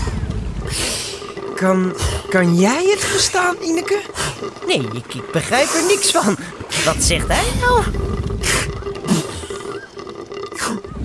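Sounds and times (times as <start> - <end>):
whale call with breathy roaring bursts: 0.0 - 11.0
speech: 1.6 - 8.1.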